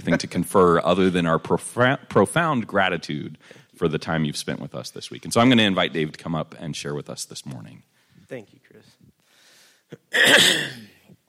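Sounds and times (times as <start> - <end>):
speech: 0.0 - 9.0, 9.9 - 10.9
breaths: 3.4 - 3.8, 7.9 - 10.0
person clearing throat before beginning a talk: 9.9 - 11.2.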